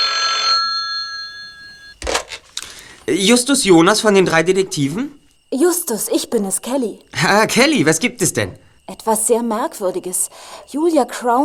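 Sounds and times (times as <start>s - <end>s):
old-fashioned telephone bell ringing: 0.0s - 2.0s
speech: 3.1s - 11.4s.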